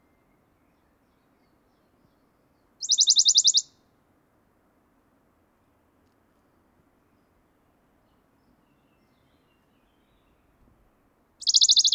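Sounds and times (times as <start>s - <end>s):
Western Bonelli's warbler song trill: 2.8s - 3.6s, 11.4s - 11.9s.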